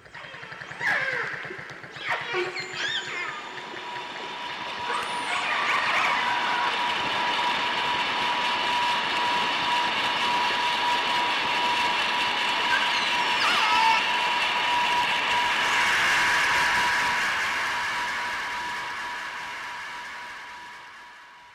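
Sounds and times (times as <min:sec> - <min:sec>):
dolphin clicks and whistles underwater: 0:00.0 - 0:06.8, 0:12.7 - 0:14.1
passing boat engine droning hum underwater: 0:00.0 - 0:19.4.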